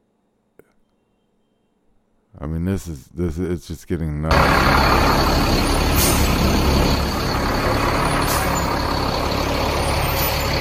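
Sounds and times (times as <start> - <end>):
speech: 2.4 - 7.1
military truck air-brake releases hissing: 4.3 - 10.5
military trucks carrying National Guard troops, heavy-engine rumble and road roar: 4.3 - 10.5.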